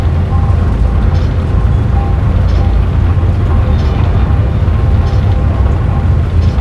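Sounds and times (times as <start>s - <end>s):
giant flywheel spinning: 0.0s - 6.6s.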